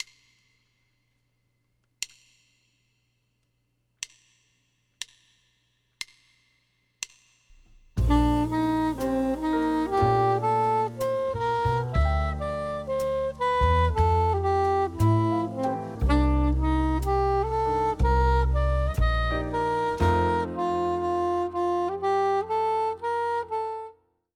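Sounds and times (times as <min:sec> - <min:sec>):
B-flat soprano instrument playing: 0:08.0 - 0:24.0.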